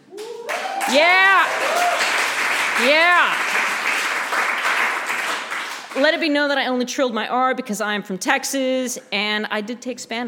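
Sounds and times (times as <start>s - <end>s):
fundraiser crowd applauding: 0.0s - 6.0s
speech: 0.9s - 1.9s, 2.8s - 3.4s, 6.0s - 10.2s.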